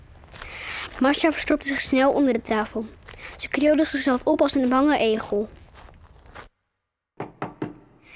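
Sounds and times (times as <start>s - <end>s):
speech: 1.0s - 5.6s
knocking on a wooden door: 7.2s - 8.0s.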